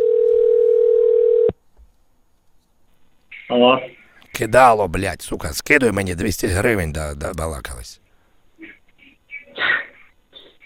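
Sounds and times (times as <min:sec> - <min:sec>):
telephone dial tone while placing a call: 0:00.0 - 0:01.5
speech: 0:03.6 - 0:08.0.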